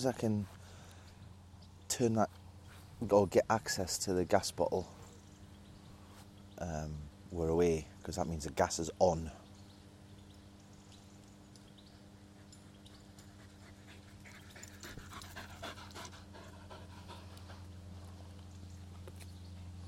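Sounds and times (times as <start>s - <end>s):
speech: 0.0s - 0.6s, 1.9s - 2.4s, 3.0s - 5.0s, 6.6s - 9.4s
wind: 0.0s - 19.8s
female dog panting heavily: 12.2s - 18.4s.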